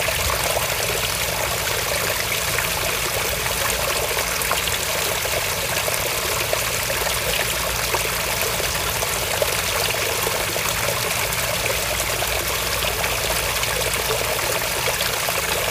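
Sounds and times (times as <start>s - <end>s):
flowing water in a Tokyo park: 0.0s - 15.6s.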